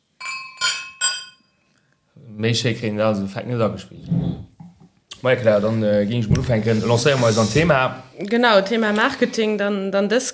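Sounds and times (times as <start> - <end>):
glasses of sparkling crémant brut clinking in a toast: 0.2 - 1.6
speech: 2.4 - 4.5, 5.2 - 10.3.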